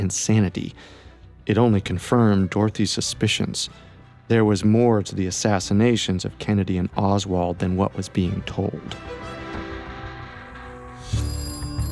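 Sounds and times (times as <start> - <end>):
speech: 0.1 - 9.4
telephone ringing with electronic tone: 11.0 - 11.8.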